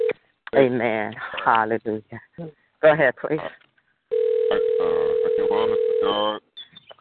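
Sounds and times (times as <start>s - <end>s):
speech: 0.6s - 3.6s, 4.5s - 6.5s
phone line's electronic ring tone: 4.1s - 6.3s.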